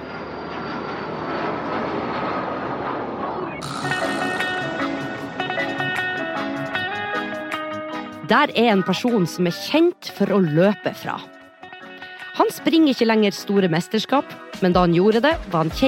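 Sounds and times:
airplane engine roar: 0.0 - 8.3
speech: 8.3 - 11.4, 12.4 - 15.8.

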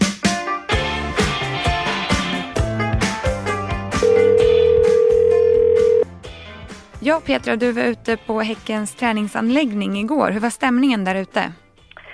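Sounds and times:
busy rhythmic music bed: 0.0 - 12.1
ringback tone from an outgoing phone call: 4.0 - 6.1
speech: 7.1 - 11.6.

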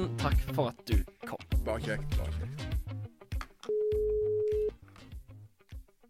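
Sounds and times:
speech: 0.0 - 2.6
busy music: 0.0 - 6.0
telephone ringback tone: 3.7 - 4.7.

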